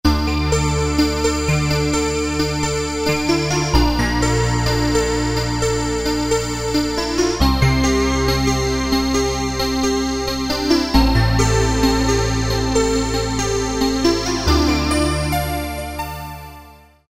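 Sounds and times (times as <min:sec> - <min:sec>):
synthesizer piano effect: 0:00.1 - 0:16.1.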